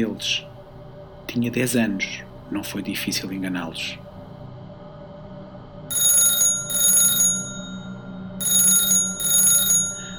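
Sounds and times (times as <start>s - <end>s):
speech: 0.0s - 0.5s, 1.3s - 4.0s
low hum: 0.0s - 10.1s
home landline telephone ringing with metallic trilling: 5.9s - 10.1s.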